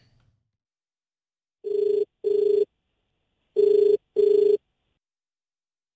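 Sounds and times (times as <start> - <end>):
telephone ringing as a phone-in call connects: 1.6 - 2.7, 3.6 - 4.6.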